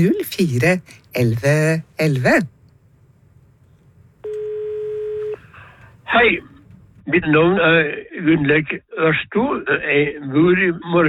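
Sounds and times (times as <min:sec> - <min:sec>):
speech: 0:00.0 - 0:02.6, 0:06.1 - 0:06.5, 0:07.1 - 0:11.0
steady electronic telephone tone: 0:04.2 - 0:05.4.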